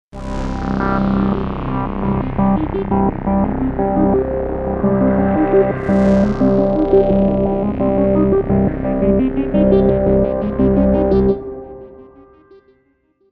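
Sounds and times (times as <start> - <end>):
Moog Voyager synthesizer: 0.2 - 13.0.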